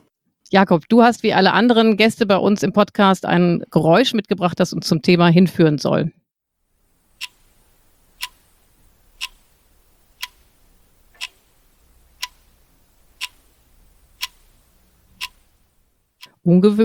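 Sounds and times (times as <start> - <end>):
speech: 0.5 - 6.2, 16.5 - 16.8
quiet hiss: 6.6 - 16.8
alarm clock on a bedside table ticking: 6.7 - 16.4.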